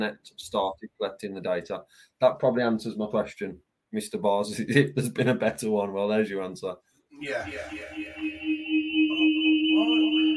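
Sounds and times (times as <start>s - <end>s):
speech: 0.0s - 8.6s
steady electronic tone humming: 7.2s - 10.3s
voice on a phone line with audio echo: 7.2s - 10.3s.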